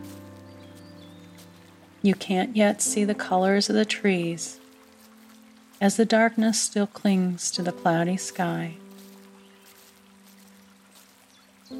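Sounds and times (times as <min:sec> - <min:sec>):
rain dripping from leaves into a stream: 0:00.0 - 0:11.7
speech: 0:02.0 - 0:04.6, 0:05.8 - 0:08.8.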